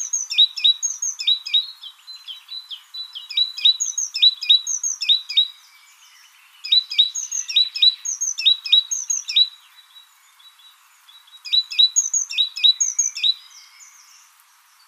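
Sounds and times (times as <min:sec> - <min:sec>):
Parus major great tit calling: 0:00.0 - 0:05.6, 0:06.6 - 0:09.6, 0:11.2 - 0:14.3.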